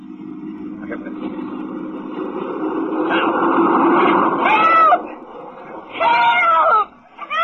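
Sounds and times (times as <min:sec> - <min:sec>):
car rumbling by overhead: 0:00.0 - 0:07.3.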